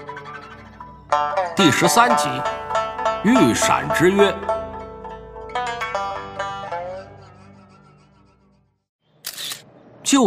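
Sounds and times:
speech: 0:01.1 - 0:02.6, 0:03.2 - 0:04.5
camera shutter clicking as a photo is taken: 0:09.2 - 0:09.7.

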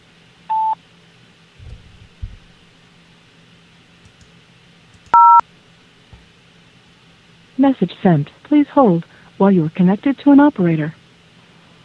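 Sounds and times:
faint hum: 0:00.0 - 0:11.8
telephone keypad dialing tones on an automated hold line: 0:00.5 - 0:00.8, 0:05.2 - 0:05.4
soft low thumps: 0:01.6 - 0:02.6
speech: 0:07.6 - 0:11.0.

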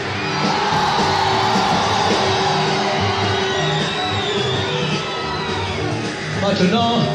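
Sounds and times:
concert audience at a live summer tour show shouting and cheering: 0:00.0 - 0:07.1
speech: 0:06.6 - 0:07.1.

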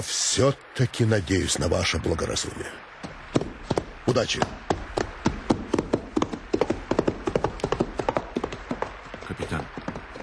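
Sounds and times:
speech: 0:00.0 - 0:03.4, 0:04.1 - 0:04.7
saddled horse's hooves clip-clopping at a walk: 0:03.0 - 0:10.2.

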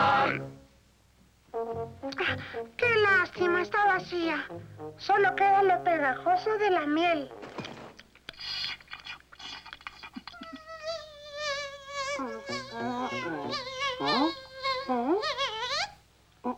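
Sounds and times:
speech: 0:01.8 - 0:07.7
cartoon bee buzzing: 0:10.4 - 0:16.0.

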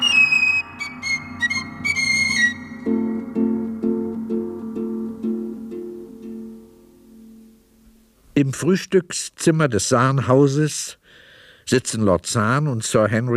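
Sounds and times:
man whistling the opening bars of a church hymn: 0:00.0 - 0:04.0
steady low musical bed: 0:00.0 - 0:08.4
speech: 0:08.4 - 0:13.3.

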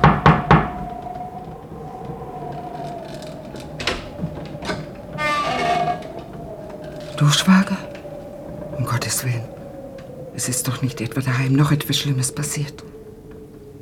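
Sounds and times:
sharp knocking on a mill door bolted from the inside: 0:00.0 - 0:00.9
clattering: 0:00.0 - 0:08.7
low rumbling: 0:00.0 - 0:13.8
speech: 0:07.2 - 0:07.9, 0:09.1 - 0:09.6, 0:10.4 - 0:12.9.

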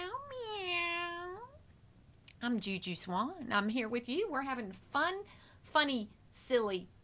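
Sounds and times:
person imitating a cat with a drawn-out meow: 0:00.0 - 0:01.6
speech: 0:02.4 - 0:07.0.

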